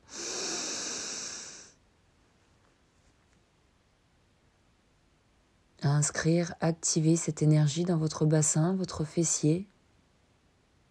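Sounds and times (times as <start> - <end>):
slow inhale through the nose during a guided relaxation exercise: 0.0 - 1.8
speech: 5.8 - 9.7.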